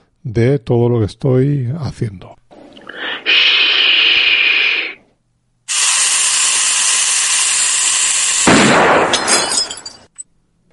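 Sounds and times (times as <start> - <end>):
speech: 0.2 - 2.4, 3.2 - 3.6
steady hiss: 2.6 - 5.1, 5.7 - 9.1
shushing hiss: 2.8 - 5.1, 5.7 - 8.7
gunshot: 8.4 - 9.4.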